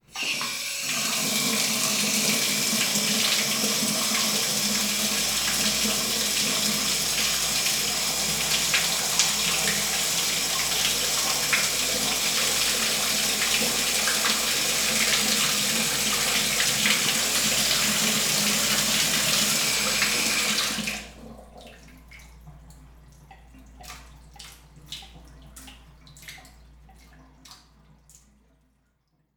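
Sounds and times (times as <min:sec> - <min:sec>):
bathtub faucet running: 0:00.0 - 0:21.2.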